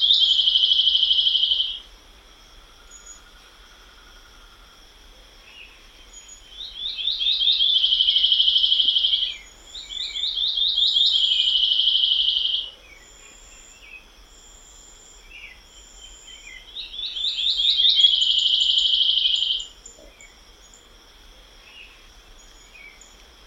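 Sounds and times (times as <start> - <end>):
policia-do-mato buzzy trill song: 0.0 - 1.9, 5.6 - 14.1, 15.1 - 20.8.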